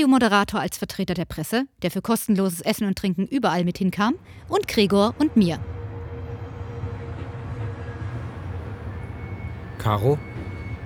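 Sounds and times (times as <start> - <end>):
speech: 0.0 - 5.8, 9.8 - 10.8
train starting to move, rumbling with deep low drone: 3.8 - 10.8
faint high tonal whines: 4.2 - 10.8.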